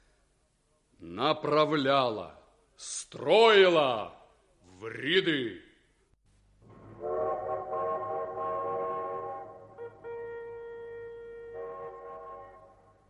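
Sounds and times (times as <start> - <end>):
speech: 1.0 - 4.2, 4.8 - 5.7
train whistle at a small railway station: 6.9 - 13.0.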